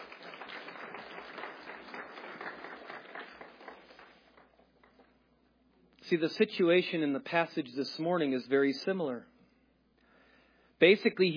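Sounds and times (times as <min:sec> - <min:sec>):
crowd applauding: 0:00.0 - 0:05.1
speech: 0:06.1 - 0:09.3, 0:10.8 - 0:11.3.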